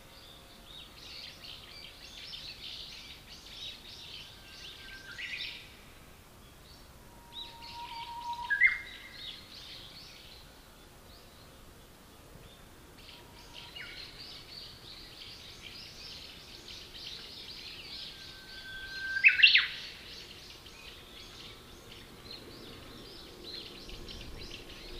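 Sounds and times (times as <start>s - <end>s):
bush warbler song: 0.0s - 24.9s.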